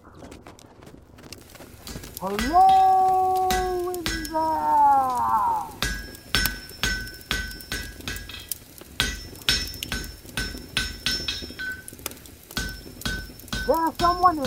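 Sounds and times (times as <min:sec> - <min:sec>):
horse hooves clip-clopping: 0:00.0 - 0:14.4
speech: 0:02.2 - 0:03.0, 0:14.2 - 0:14.4
blacksmith's hammer striking metal at a forge: 0:02.2 - 0:04.6, 0:05.8 - 0:14.4.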